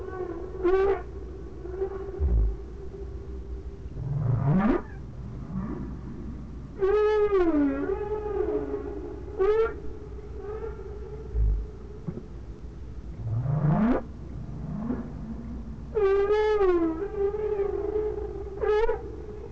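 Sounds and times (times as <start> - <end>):
whale calls: 0.0 - 3.3, 4.0 - 12.3, 13.2 - 19.4
steady low hum: 0.0 - 19.4.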